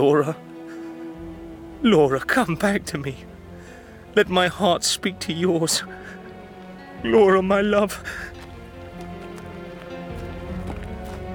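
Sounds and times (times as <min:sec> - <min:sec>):
speech: 0:00.0 - 0:00.5, 0:01.8 - 0:03.3, 0:04.2 - 0:06.2, 0:07.0 - 0:08.4
footsteps on a hard surface: 0:08.3 - 0:11.3.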